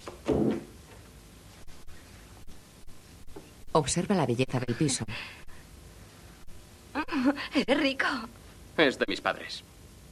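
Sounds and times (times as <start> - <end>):
door shutting with a solid thud: 0.2 - 0.8
speech: 3.8 - 5.4, 7.3 - 9.7.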